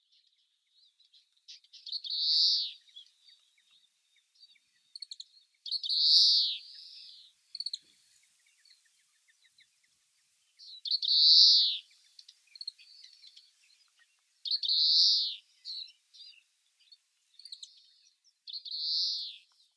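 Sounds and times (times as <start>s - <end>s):
Oriental Greenfinch: 0.0s - 19.7s.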